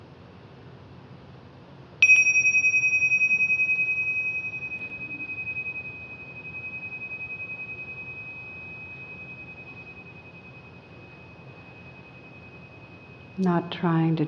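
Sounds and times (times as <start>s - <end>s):
gong struck and ringing out: 2.0s - 13.4s
speech: 13.4s - 14.2s.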